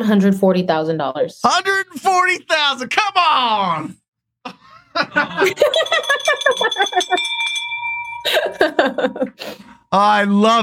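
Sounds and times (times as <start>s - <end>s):
speech: 0.0s - 7.6s, 8.2s - 10.6s
excited voices: 1.5s - 6.1s
people laughing and cheering: 4.5s - 7.4s
celebration bell struck hard: 5.7s - 9.0s.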